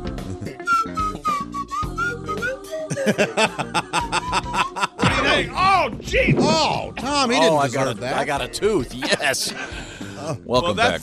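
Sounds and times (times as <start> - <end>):
slide whistle playing a disco-style melody: 0.4 - 5.0
people laughing: 2.8 - 5.5, 8.9 - 9.8
speech: 3.0 - 4.6, 5.4 - 11.0.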